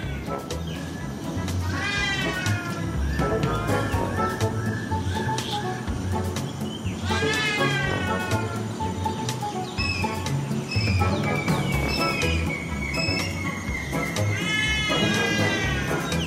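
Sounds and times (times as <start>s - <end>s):
busy forest ambience: 0.0s - 16.2s
trumpeter hornbill giving nasal wailing calls: 0.0s - 16.2s.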